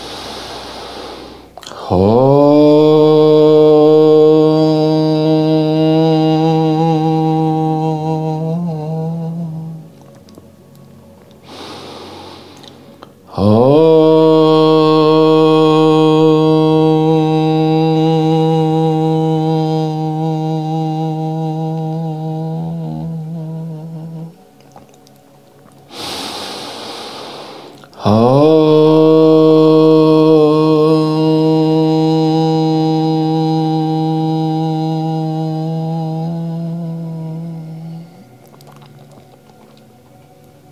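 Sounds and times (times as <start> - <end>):
deep audible breath: 0.0 - 2.1, 11.4 - 13.1, 25.9 - 28.2
single voice chanting a low Om mantra: 0.0 - 40.7
speech: 1.9 - 2.4.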